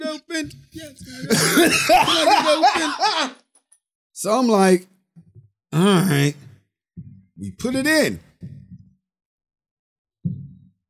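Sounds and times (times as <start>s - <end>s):
laughter: 0.0s - 3.4s
speech: 0.4s - 3.4s, 4.2s - 4.9s, 5.7s - 6.4s, 7.4s - 8.6s
deep heartbeat thumps sound effect: 5.2s - 9.0s, 10.2s - 10.7s.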